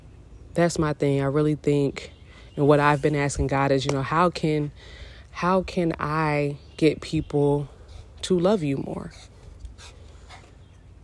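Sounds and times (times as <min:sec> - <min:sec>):
low hum: 0:00.0 - 0:11.0
speech: 0:00.6 - 0:09.9
dog panting softly: 0:09.1 - 0:10.6.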